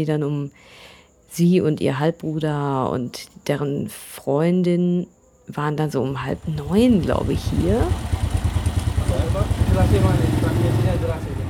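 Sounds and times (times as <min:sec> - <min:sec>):
speech: 0:00.0 - 0:08.2, 0:09.1 - 0:11.4
small motorcycle engine idling: 0:06.2 - 0:11.4.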